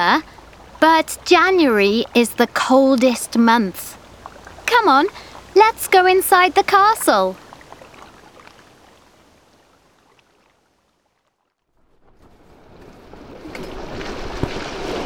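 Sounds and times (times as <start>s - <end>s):
speech: 0.0s - 4.0s, 4.7s - 7.4s
water wash from a sailing boat on the Menai Strait in January: 0.0s - 15.0s
wind on the Menai Strait in January: 0.0s - 15.0s.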